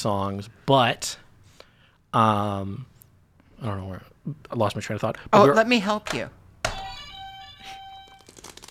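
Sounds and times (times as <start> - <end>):
speech: 0.0 - 1.2, 2.1 - 2.9, 3.6 - 6.4
steady held electronic game show buzzer beep: 6.7 - 8.3.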